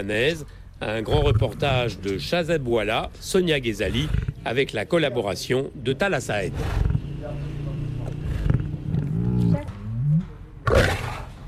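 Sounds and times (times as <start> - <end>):
speech: 0.0 - 7.4
lion roaring in a small cage: 1.0 - 2.1, 3.8 - 4.5, 6.4 - 11.4.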